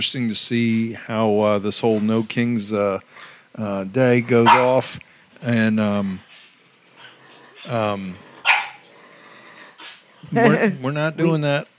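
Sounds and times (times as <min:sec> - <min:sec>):
speech: 0:00.0 - 0:06.3, 0:07.6 - 0:08.3, 0:10.2 - 0:11.7
puppies barking indoors: 0:04.3 - 0:04.8, 0:08.4 - 0:09.0
puppy yipping indoors: 0:04.4 - 0:04.7, 0:08.4 - 0:08.8
puppy low growly rumbling indoors: 0:04.4 - 0:04.8, 0:05.9 - 0:10.6.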